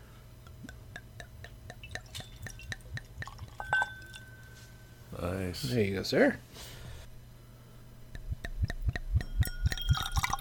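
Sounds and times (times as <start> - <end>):
wine poured from a bottle into a glass: 1.8 - 4.4, 9.4 - 10.4
speech: 5.2 - 6.7.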